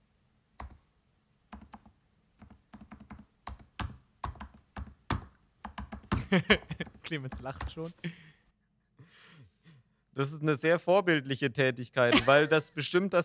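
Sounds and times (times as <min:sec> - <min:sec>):
typing on a computer keyboard: 0:00.6 - 0:00.8, 0:01.5 - 0:06.2, 0:06.8 - 0:07.7
laughter: 0:06.2 - 0:08.3, 0:12.1 - 0:13.0
speech: 0:06.3 - 0:08.2, 0:10.2 - 0:13.2.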